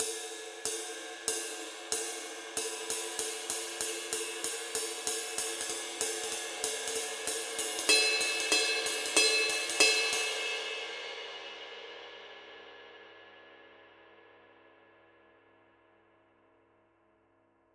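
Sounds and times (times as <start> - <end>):
Paiste Twenty Master medium ride cymbal: 0.0 - 11.2.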